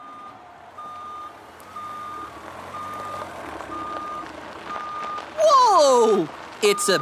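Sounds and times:
dump truck reversing alarm beeps: 0:00.0 - 0:04.2
speech: 0:06.2 - 0:06.9.

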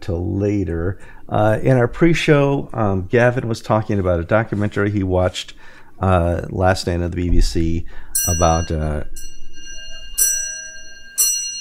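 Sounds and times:
speech: 0:00.1 - 0:09.4
clock chiming four o'clock with clear bell strikes: 0:08.2 - 0:11.5.

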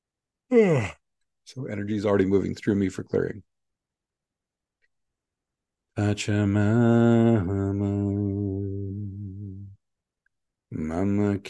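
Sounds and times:
person yawning with a breathy voiced exhalation: 0:00.5 - 0:01.0
speech: 0:00.5 - 0:03.5, 0:06.0 - 0:09.0, 0:10.7 - 0:11.4.

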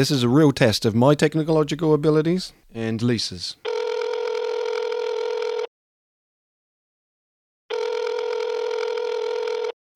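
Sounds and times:
speech: 0:00.0 - 0:03.7
phone call dialing tone: 0:03.6 - 0:05.7, 0:07.7 - 0:09.8.

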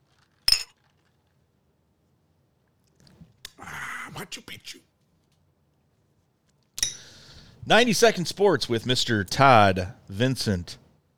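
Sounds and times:
speech: 0:04.2 - 0:04.9, 0:07.7 - 0:10.8
glasses clinking in a toast: 0:06.8 - 0:07.2.

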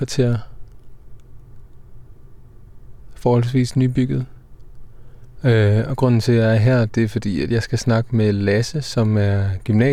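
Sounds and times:
speech: 0:00.0 - 0:00.5, 0:03.2 - 0:04.3, 0:05.4 - 0:09.9
steady low rumble inside a parked car with doors closed in a residential neighbourhood: 0:00.0 - 0:09.9
faint ticks: 0:00.6 - 0:01.9, 0:04.5 - 0:05.4.

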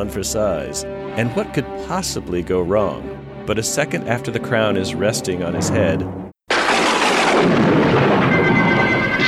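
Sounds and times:
speech: 0:00.0 - 0:06.2, 0:07.4 - 0:07.7
thunder-like roar of a sudden storm: 0:05.5 - 0:09.1.

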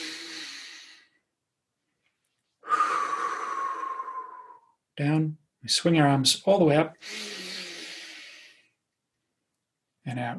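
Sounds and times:
breathy exhale during a guided breathing exercise: 0:00.0 - 0:01.2, 0:02.6 - 0:04.7, 0:07.0 - 0:08.7
long deep inhale during a beach ball breathing exercise: 0:00.0 - 0:01.2, 0:02.6 - 0:04.7, 0:07.0 - 0:08.7
speech: 0:05.0 - 0:07.4, 0:10.1 - 0:10.3.

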